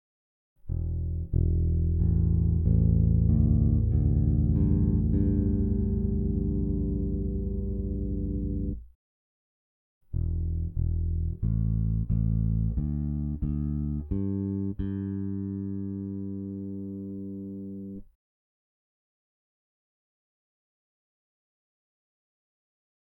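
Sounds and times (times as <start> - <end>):
electric bass played with rest stroke: 0.7 - 8.9, 10.2 - 18.0.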